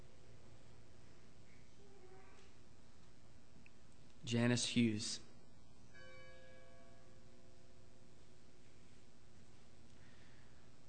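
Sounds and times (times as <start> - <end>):
steady hiss: 0.0 - 10.8
speech: 4.2 - 5.3
memorial bell struck: 5.9 - 7.8.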